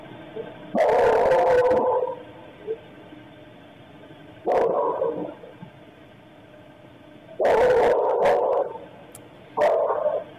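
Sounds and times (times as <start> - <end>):
dog barking violently during a stabbing attack: 0.8 - 2.2, 4.5 - 5.3, 7.4 - 8.8, 9.6 - 10.3.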